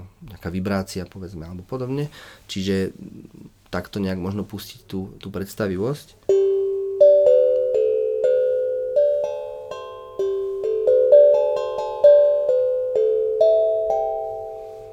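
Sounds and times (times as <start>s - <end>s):
speech: 0.2s - 6.3s
oval metal instrument playing chime-like melody: 6.3s - 14.9s.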